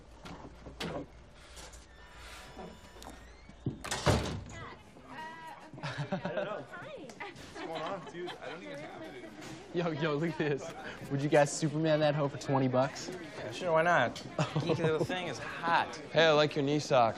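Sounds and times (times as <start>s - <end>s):
speech: 1.0s - 1.2s, 8.2s - 17.1s
door shutting: 2.2s - 4.7s
indistinct voices chattering: 4.5s - 17.1s
people laughing: 5.1s - 11.3s, 14.2s - 16.1s.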